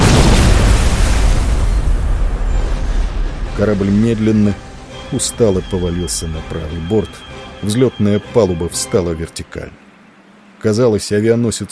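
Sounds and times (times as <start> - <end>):
powerful explosion tearing a hole at a ship's waterline: 0.0 - 5.6
speech: 3.6 - 9.8, 10.6 - 11.6.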